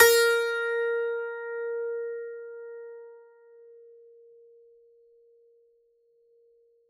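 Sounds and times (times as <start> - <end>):
strings plucked with a pick: 0.0 - 3.3.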